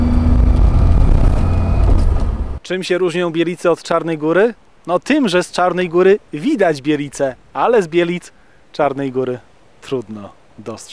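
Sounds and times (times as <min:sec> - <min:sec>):
old Russian off-road Lada car engine and road noise while driving: 0:00.0 - 0:02.6
speech: 0:02.7 - 0:10.9.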